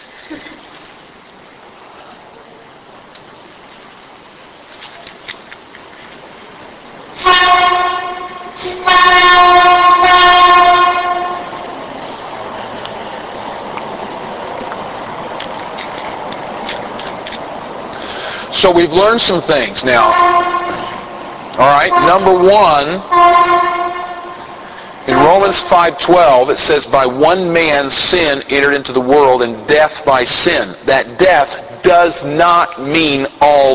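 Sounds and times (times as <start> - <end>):
speech: 0.3 - 0.6, 18.6 - 20.4, 21.6 - 23.1, 25.4 - 33.7
train rumbling past: 6.2 - 31.8
loud sustained train horn blasts: 7.2 - 11.8, 19.9 - 26.1.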